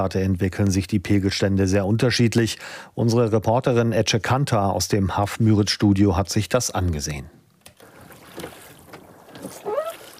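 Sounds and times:
speech: 0.0 - 7.4
rowboat oars pulling through weedy lake water: 7.8 - 10.1.

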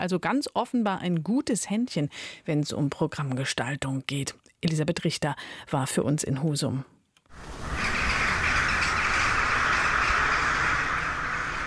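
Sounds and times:
speech: 0.0 - 7.7
crows calling in castle garden: 7.4 - 11.6.

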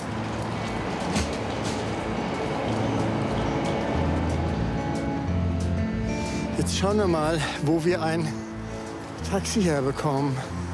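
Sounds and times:
moving train interior rumbling during a night journey: 0.1 - 5.5
speech: 6.7 - 8.4, 9.3 - 10.6.

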